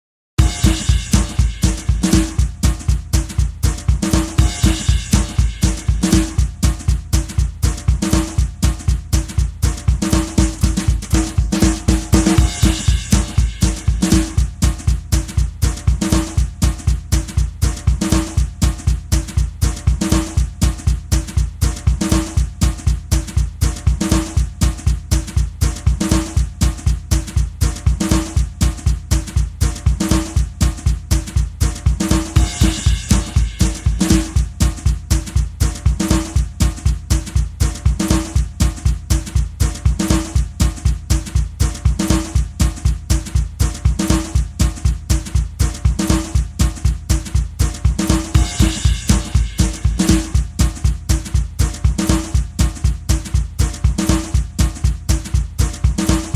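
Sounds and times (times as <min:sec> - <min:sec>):
country field drums: 0:00.4 - 0:56.3.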